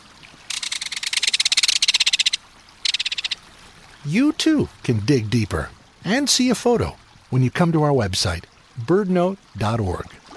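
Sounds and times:
Belted Kingfisher rattle call: 0.5 - 3.4
speech: 4.0 - 10.2.

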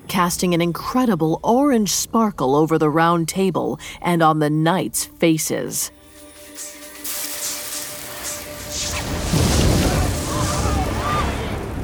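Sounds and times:
speech: 0.2 - 6.0
crackling hiss of flames: 5.9 - 11.5
man bursting into flames with roaring whoosh: 8.0 - 11.8.

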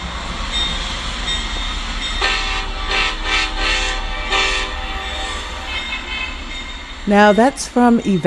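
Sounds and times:
low rumble of a passing train: 0.0 - 8.2
train engine horn blasts at a railroad crossing: 2.2 - 8.2
speech: 7.1 - 8.2.

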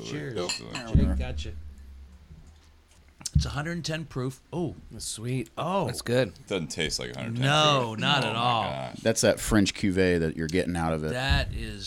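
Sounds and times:
speech: 0.0 - 1.7, 3.4 - 11.8
glasses clinking together in a toast: 0.4 - 1.0.

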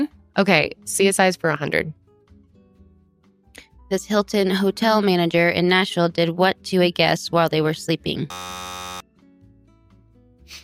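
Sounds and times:
speech: 0.0 - 2.0, 3.9 - 8.7
hum of tones: 8.3 - 9.0
loud harsh game show buzzer: 8.3 - 9.0.

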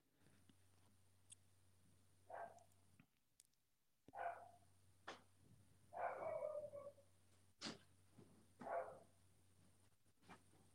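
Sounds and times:
dog barking: 2.3 - 2.7, 4.1 - 4.6, 5.9 - 7.0, 8.6 - 9.2.

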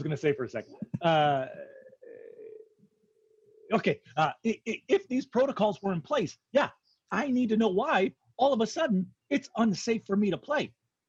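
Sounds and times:
speech: 0.0 - 1.8, 3.7 - 10.8
loud belch: 1.0 - 2.7.

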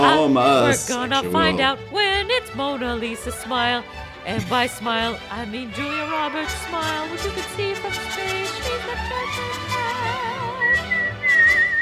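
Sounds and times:
speech: 0.1 - 10.3
person whistling a steady high note: 10.6 - 11.8.

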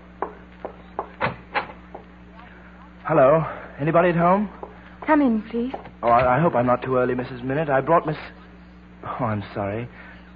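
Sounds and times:
front door being opened with dull wooden clunks and clicks: 0.2 - 2.0
speech: 3.1 - 8.4, 9.1 - 10.0.

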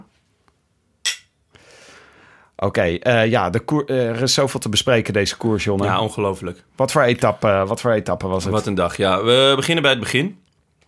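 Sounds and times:
glasses of Italian Chardonnay clinking in a toast: 1.0 - 1.4, 10.4 - 10.8
speech: 2.6 - 10.4.

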